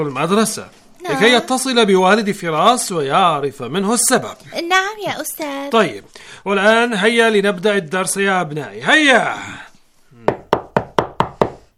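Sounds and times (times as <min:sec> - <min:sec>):
speech: 0:00.0 - 0:09.6
knocking on a wooden classroom door at a school: 0:10.3 - 0:11.6.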